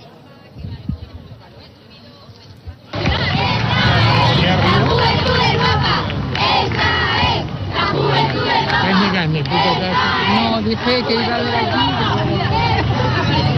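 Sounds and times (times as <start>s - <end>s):
large crowd of young people shouting and cheering: 2.9s - 13.5s.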